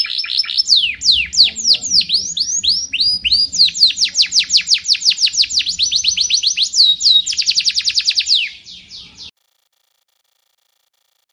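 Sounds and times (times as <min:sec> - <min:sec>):
Sekar Jagad variety canary song with descending chirps: 0:00.0 - 0:09.3.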